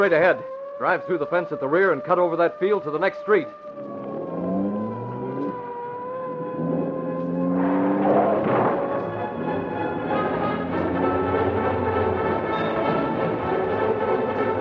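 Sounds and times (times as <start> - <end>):
speech: 0.0 - 3.9
police car siren wailing during a car chase: 0.0 - 14.5
loud steady engine roar: 3.6 - 14.5.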